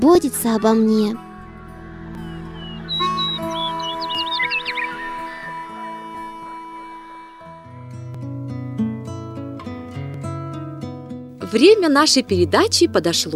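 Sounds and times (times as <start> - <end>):
speech: 0.0 - 1.3, 11.6 - 13.3
sustained musical tones: 0.0 - 9.0
sparrow chirps: 0.4 - 6.5.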